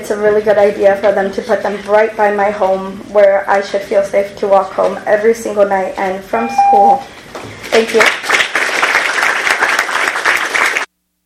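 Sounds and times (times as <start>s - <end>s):
speech: 0.0s - 8.4s
audience clapping after public comment: 7.3s - 10.9s.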